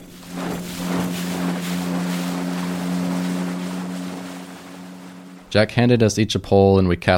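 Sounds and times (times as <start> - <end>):
wind buffeting around a motorboat: 0.0 - 5.6
water rushing around a motorboat: 0.0 - 5.9
motorboat engine droning on a lake: 0.0 - 6.1
speech: 5.5 - 7.1.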